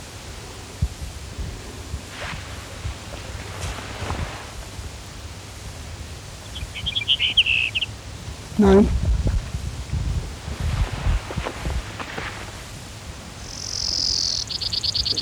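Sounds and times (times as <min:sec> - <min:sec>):
steady hiss: 0:00.0 - 0:15.2
Brewer's sparrow singing a short high buzzy trill: 0:06.4 - 0:07.9, 0:13.4 - 0:15.2
speech: 0:08.6 - 0:09.0.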